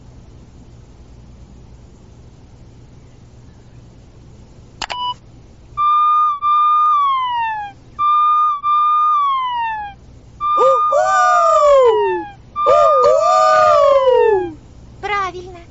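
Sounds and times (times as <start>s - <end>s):
cartoon fire truck siren: 5.8s - 14.6s.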